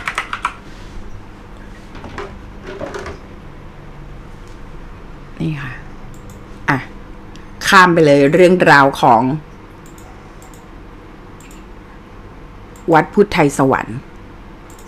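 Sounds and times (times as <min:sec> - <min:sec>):
computer keyboard key clicks while typing a password: 0:00.0 - 0:00.6
speech: 0:07.7 - 0:09.5, 0:12.9 - 0:14.1.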